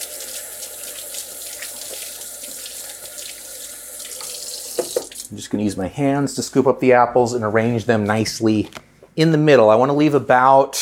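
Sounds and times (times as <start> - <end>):
tap water running over hands being rinsed: 0.0 - 5.3
speech: 5.3 - 10.8.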